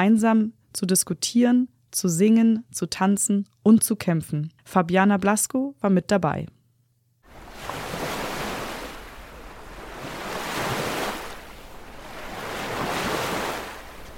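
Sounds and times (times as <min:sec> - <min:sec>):
speech: 0:00.0 - 0:06.6
waves washing onto the shore of a large lake at the foot of the Andes in Patagonia: 0:07.3 - 0:14.1.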